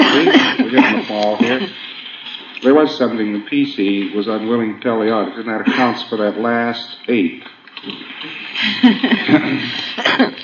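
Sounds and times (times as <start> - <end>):
person coughing roughly: 0.0 - 1.8, 9.1 - 10.4
laughter: 0.0 - 2.0, 5.1 - 6.3, 8.0 - 10.4
speech: 2.6 - 10.3.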